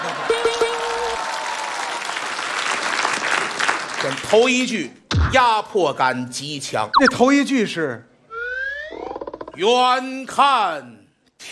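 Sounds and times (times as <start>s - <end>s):
audience applause: 0.0s - 4.2s
speech: 4.0s - 8.1s, 9.6s - 11.5s.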